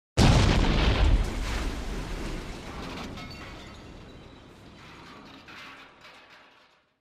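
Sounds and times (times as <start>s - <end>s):
explosion: 0.2s - 5.1s
falling debris from explosion: 0.2s - 6.9s.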